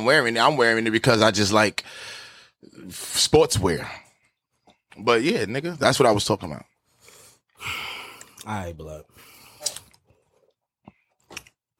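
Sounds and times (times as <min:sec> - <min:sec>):
speech: 0:00.0 - 0:04.0, 0:05.0 - 0:06.7, 0:07.6 - 0:09.2
person sipping a drink: 0:09.4 - 0:11.6
wet mouth smacks: 0:09.6 - 0:10.0.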